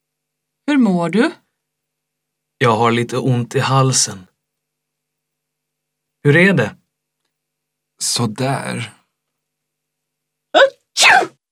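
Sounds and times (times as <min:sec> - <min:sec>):
speech: 0:00.7 - 0:01.4, 0:02.6 - 0:04.3, 0:06.2 - 0:06.8, 0:08.0 - 0:09.0
loud sneeze: 0:10.6 - 0:11.4.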